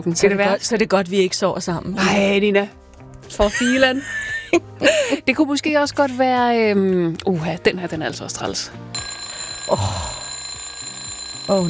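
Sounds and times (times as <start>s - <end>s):
speech: 0.0s - 8.9s, 9.7s - 10.1s, 11.5s - 11.6s
alarm clock ringing: 9.0s - 11.6s.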